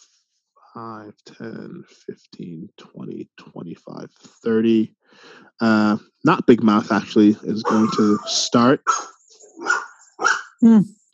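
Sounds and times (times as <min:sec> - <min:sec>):
speech: 0:00.7 - 0:11.0
laughter: 0:00.8 - 0:08.8
dog barking: 0:07.5 - 0:10.6.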